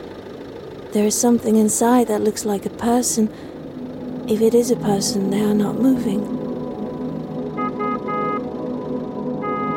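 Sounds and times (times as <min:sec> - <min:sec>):
steady low rumble of traffic or an idling engine: 0:00.0 - 0:09.7
speech: 0:00.9 - 0:03.5, 0:04.3 - 0:06.4
car horn honking: 0:03.7 - 0:09.7.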